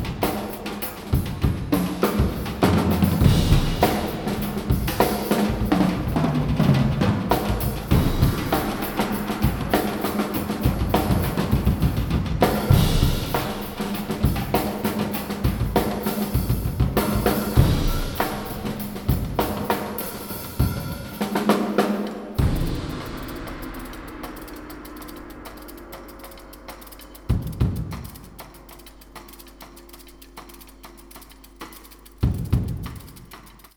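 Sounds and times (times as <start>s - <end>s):
binaural percussion: 0.0s - 33.7s.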